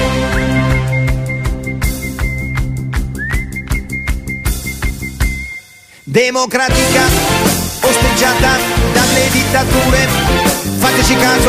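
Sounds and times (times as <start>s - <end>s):
rhythmic musical backing with bass line and percussive hits: 0.0s - 6.0s, 6.7s - 11.4s
person whistling a single repeated high note: 0.1s - 6.1s
speech: 6.2s - 11.4s.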